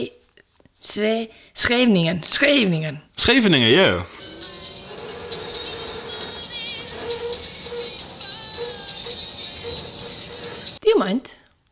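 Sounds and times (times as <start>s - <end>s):
speech: 0.0s - 0.2s, 0.8s - 4.3s, 11.0s - 11.4s
smoking train rumbling in motion heard from inside a carriage: 4.2s - 10.8s
train high-pitched whines and squeals: 4.2s - 10.8s.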